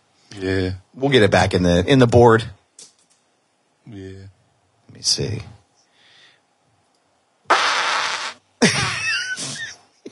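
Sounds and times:
speech: 0:00.4 - 0:02.6, 0:03.9 - 0:04.3, 0:05.0 - 0:05.6
fart sound effects from a soundboard: 0:07.5 - 0:09.0.

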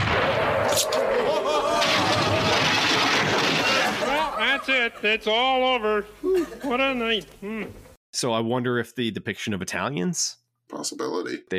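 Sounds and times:
cannon blast: 0:00.0 - 0:04.3
laughter: 0:01.0 - 0:02.4, 0:03.6 - 0:07.8
speech: 0:04.6 - 0:11.5.

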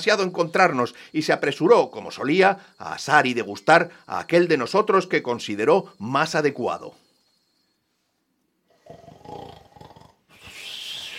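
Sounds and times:
speech: 0:00.0 - 0:07.0
loud deep snoring of a sleeping giant: 0:08.7 - 0:11.1.

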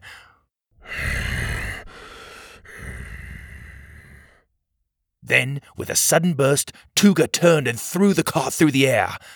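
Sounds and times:
heavy raspy gravelly breaths from a large creature: 0:00.0 - 0:04.5
speech: 0:05.3 - 0:09.3.

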